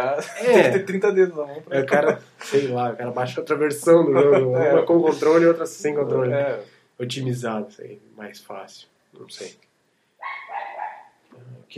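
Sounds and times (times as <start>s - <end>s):
laughter: 0.0s - 0.9s, 3.9s - 5.8s
speech: 0.0s - 9.7s
dog giving a drawn-out slightly whiny bark: 10.2s - 11.2s.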